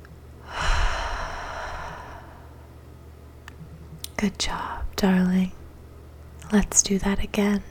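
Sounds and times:
deep breath in and out: 0:00.4 - 0:02.7
speech: 0:04.2 - 0:05.6, 0:06.5 - 0:07.6.

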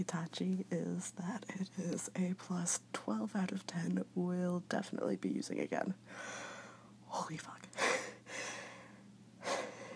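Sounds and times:
speech: 0:00.0 - 0:06.5, 0:07.1 - 0:07.8
heavy out-of-breath breathing: 0:06.1 - 0:06.9, 0:07.8 - 0:09.9.

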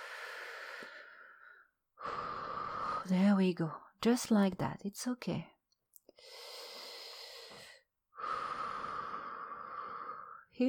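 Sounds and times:
deep slow breathing: 0:00.0 - 0:03.1, 0:06.2 - 0:10.5
speech: 0:03.1 - 0:05.5, 0:06.2 - 0:06.5.

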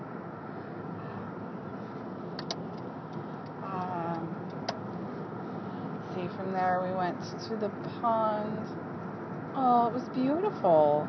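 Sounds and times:
road rumble and engine hum in a moving car cabin: 0:00.0 - 0:11.0
sharp ticking clicks: 0:02.4 - 0:04.9
speech: 0:06.3 - 0:08.9, 0:09.6 - 0:11.0.

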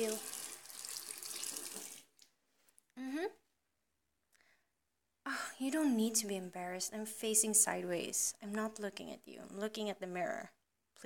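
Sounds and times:
speech: 0:00.0 - 0:00.4, 0:05.6 - 0:11.0
water running from a tap into a sink: 0:00.0 - 0:02.1.

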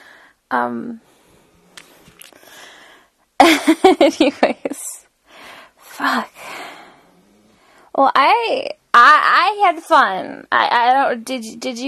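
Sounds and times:
speech: 0:00.5 - 0:01.1, 0:03.6 - 0:04.8, 0:06.0 - 0:06.5, 0:08.0 - 0:11.8
dog snoring with a loud groaning snore: 0:06.9 - 0:07.8.

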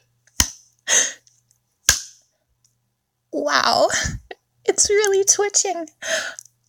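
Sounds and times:
sharp crisp slaps on skin: 0:00.4 - 0:00.6
speech: 0:03.3 - 0:04.2, 0:04.8 - 0:06.5.

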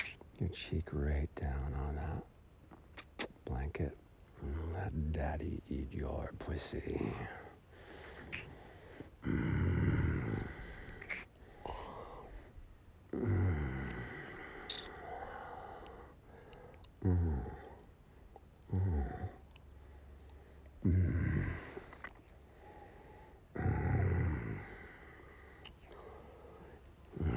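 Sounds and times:
speech: 0:00.4 - 0:02.4, 0:03.5 - 0:07.4, 0:09.2 - 0:10.0
man growling low and rough: 0:09.2 - 0:12.3, 0:13.1 - 0:15.3, 0:17.0 - 0:17.9, 0:18.7 - 0:19.5, 0:20.8 - 0:22.1, 0:23.6 - 0:25.2, 0:27.1 - 0:27.3.

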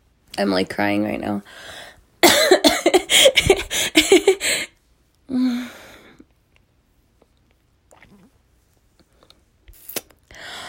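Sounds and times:
speech: 0:00.4 - 0:01.8, 0:05.3 - 0:05.8
person coughing after choking: 0:02.2 - 0:04.4.

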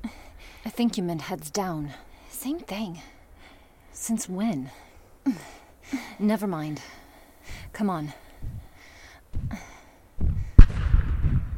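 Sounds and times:
speech: 0:00.8 - 0:03.2, 0:04.0 - 0:07.0, 0:07.8 - 0:08.2
gunfire aimed at people under attack: 0:10.6 - 0:11.5.

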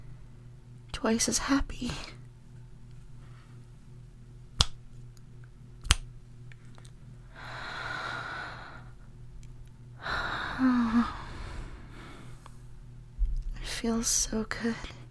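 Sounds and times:
speech: 0:01.0 - 0:02.2, 0:13.9 - 0:15.0
crisp finger snaps: 0:05.8 - 0:06.1
long soft breathy exhales: 0:07.3 - 0:09.0, 0:10.0 - 0:12.4
faint sigh: 0:10.0 - 0:12.3.

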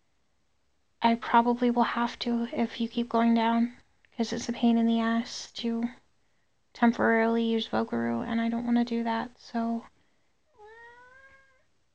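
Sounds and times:
speech: 0:01.0 - 0:06.0, 0:06.8 - 0:09.9
cat meowing: 0:10.6 - 0:11.6.

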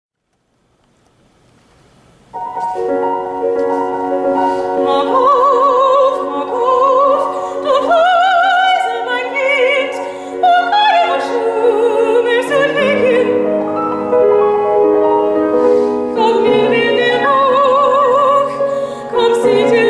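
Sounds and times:
piano part: 0:02.2 - 0:19.8
German opera serenade singing: 0:04.6 - 0:14.1, 0:16.0 - 0:19.8.

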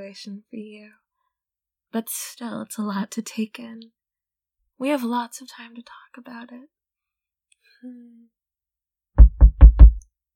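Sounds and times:
speech: 0:00.1 - 0:01.0, 0:01.9 - 0:04.0, 0:04.8 - 0:06.8, 0:07.8 - 0:08.4
firm knocking on a door: 0:09.2 - 0:10.0.

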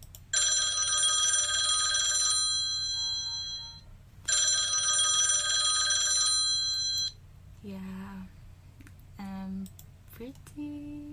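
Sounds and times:
classic telephone bell ringing: 0:00.4 - 0:07.2
people talking: 0:07.6 - 0:08.3, 0:09.2 - 0:11.1.

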